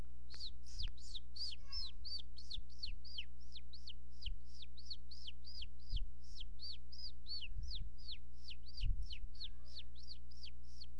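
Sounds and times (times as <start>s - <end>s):
constant low electrical hum: 0.0s - 10.9s
young bird calling with high sharply descending chirps: 0.3s - 10.9s.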